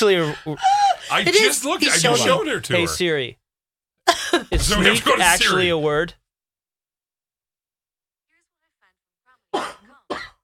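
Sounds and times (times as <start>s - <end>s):
speech: 0.0s - 3.4s, 4.5s - 6.2s
person coughing: 9.5s - 10.4s.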